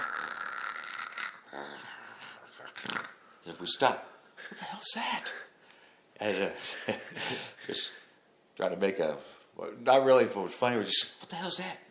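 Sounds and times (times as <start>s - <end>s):
voice imitating a bear's heavy raspy breathing: 0.0s - 3.3s
speech: 3.4s - 5.5s, 6.2s - 8.0s, 8.6s - 11.9s.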